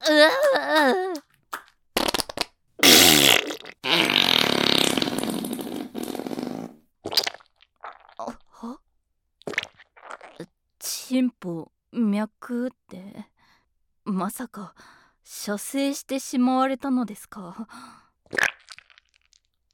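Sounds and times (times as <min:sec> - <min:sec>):
speech: 0:00.0 - 0:01.0, 0:11.2 - 0:13.0, 0:14.2 - 0:18.5
loud farting: 0:02.0 - 0:08.4.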